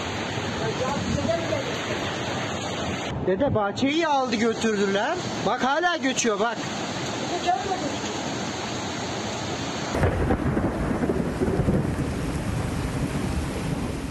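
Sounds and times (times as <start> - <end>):
heavy rain from a midday thunderstorm in İzmir: 0.0 - 14.0
speech: 3.2 - 7.9
deep thunder rumble: 10.0 - 14.0.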